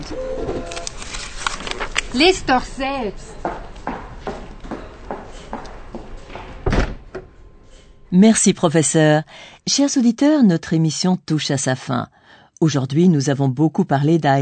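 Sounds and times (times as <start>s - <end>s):
speech: 0.0s - 0.8s, 2.1s - 3.4s, 8.1s - 14.4s
shuffling movement: 0.6s - 6.6s
door slamming shut as someone leaves: 6.3s - 7.3s.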